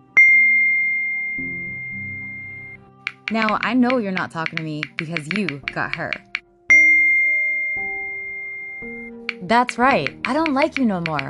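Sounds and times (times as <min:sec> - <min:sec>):
soft lower tones: 0:00.0 - 0:10.4
text message notification ding: 0:00.2 - 0:02.7, 0:06.7 - 0:09.5
speech: 0:03.3 - 0:06.3, 0:09.5 - 0:11.2.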